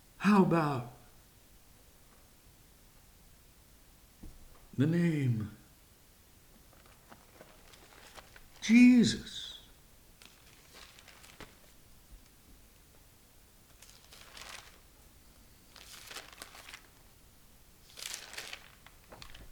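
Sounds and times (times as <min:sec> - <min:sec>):
speech: 0:00.2 - 0:01.0, 0:04.8 - 0:05.6, 0:08.6 - 0:09.5
book pages turning: 0:06.7 - 0:08.6, 0:10.2 - 0:11.8, 0:13.8 - 0:14.8, 0:15.8 - 0:16.9, 0:17.9 - 0:19.5.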